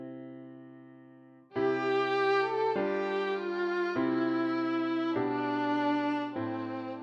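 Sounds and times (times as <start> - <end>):
violin: 1.5 - 7.0.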